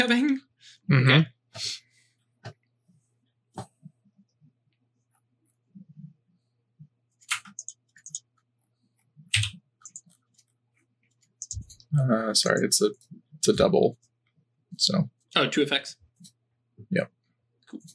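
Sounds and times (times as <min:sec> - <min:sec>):
speech: 0:00.0 - 0:01.8, 0:11.9 - 0:14.0, 0:14.8 - 0:16.0, 0:16.9 - 0:17.9
typing on a computer keyboard: 0:07.2 - 0:08.3, 0:09.3 - 0:10.2, 0:11.4 - 0:11.8.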